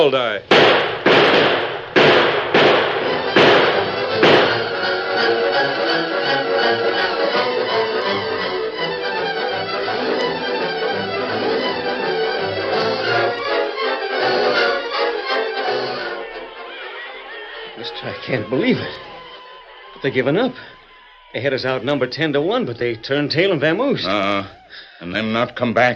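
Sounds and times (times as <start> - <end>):
speech: 0.0 - 1.5, 18.1 - 19.0, 20.0 - 25.9
gunfire in a shootout against attacking raiders: 0.5 - 5.4
laughter: 3.1 - 25.4.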